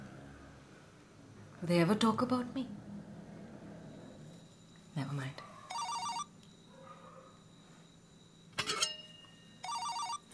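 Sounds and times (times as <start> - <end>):
speech: 1.6 - 2.9
mobile phone ringtone: 5.7 - 6.3, 8.7 - 10.3.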